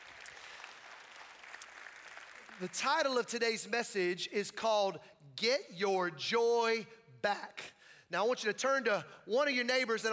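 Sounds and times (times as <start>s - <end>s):
large crowd clapping for an offering: 0.0s - 3.1s
speech: 2.6s - 10.1s.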